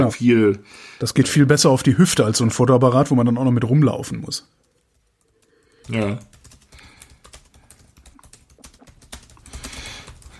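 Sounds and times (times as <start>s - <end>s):
speech: 0.0s - 4.7s, 5.9s - 6.3s
rapid typing on a computer keyboard: 4.0s - 10.3s.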